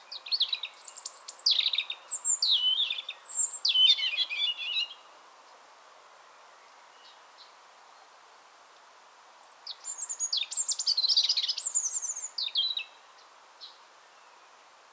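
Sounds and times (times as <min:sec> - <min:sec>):
European robin Erithacus rubecula singing: 0:00.1 - 0:05.0, 0:09.7 - 0:13.0.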